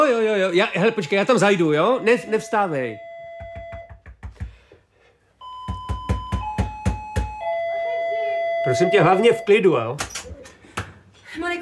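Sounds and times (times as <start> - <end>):
speech: 0.1 - 3.1, 8.7 - 10.1
electronic doorbell ringing: 0.6 - 3.9, 5.4 - 9.8.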